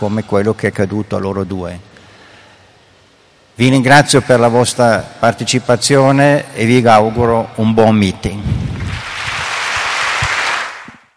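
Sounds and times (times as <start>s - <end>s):
speech: 0.0s - 1.9s, 3.6s - 8.8s
audience applauding at the close of a cultural talk in Rimini: 8.8s - 11.1s.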